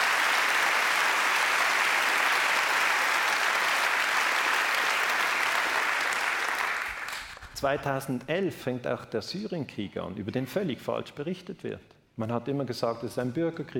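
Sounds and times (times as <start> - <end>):
audience applause after a political speech: 0.0 - 7.4
speech: 7.6 - 13.7.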